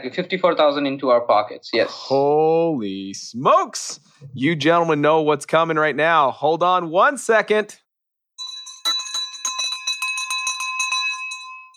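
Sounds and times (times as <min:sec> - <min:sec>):
speech: 0:00.0 - 0:07.8
victory bell ringing rapidly: 0:08.4 - 0:11.7.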